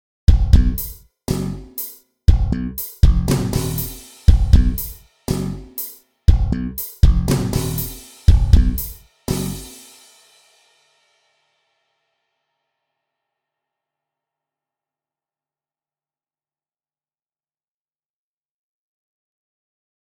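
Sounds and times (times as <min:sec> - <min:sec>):
bass: 0:00.3 - 0:09.8
drums: 0:00.3 - 0:10.9.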